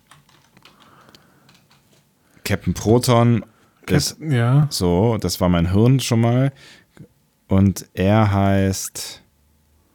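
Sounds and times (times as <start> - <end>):
rapid keyboard typing with soft key clicks: 0.0 - 2.1
speech: 2.5 - 9.2.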